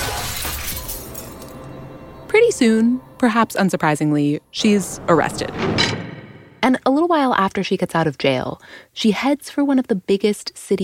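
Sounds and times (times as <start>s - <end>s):
bright glassy mirror fragments tinkling and scattering: 0.0s - 1.6s
mirror shattering from a thrown billiard ball: 0.0s - 1.7s
speech: 2.5s - 6.0s, 6.7s - 10.8s.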